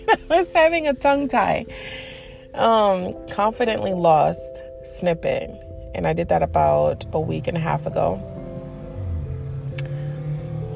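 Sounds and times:
speech: 0.1 - 8.3
car engine droning: 3.6 - 10.7.

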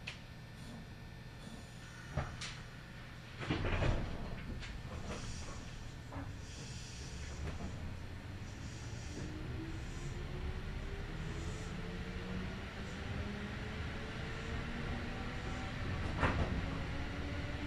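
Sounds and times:
low rumble inside a local stopping train: 0.6 - 17.6
train motor whine rising as it picks up speed: 9.5 - 17.6.

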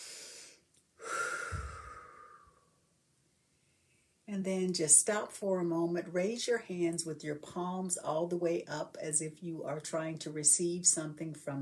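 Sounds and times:
breathy inhale through the nose during a guided stretching exercise: 0.0 - 2.6
slightly whistling exhale through the mouth during a guided stretching exercise: 0.0 - 2.6
speech: 4.3 - 11.6.

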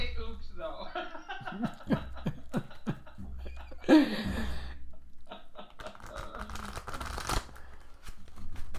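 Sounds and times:
laughter: 0.9 - 6.4
deck of cards being shuffled with a riffle: 5.8 - 8.7.

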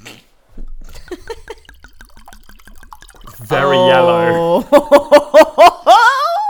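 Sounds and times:
wine glugging from a bottle into a glass: 0.5 - 5.9
glass clink: 0.6 - 4.9
speech: 3.5 - 5.2.

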